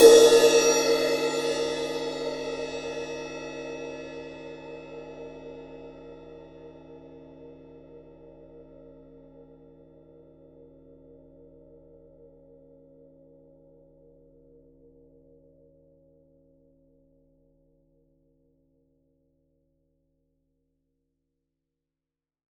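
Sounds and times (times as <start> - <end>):
51cm acoustic and electric ride cymbal: 0.0 - 3.3.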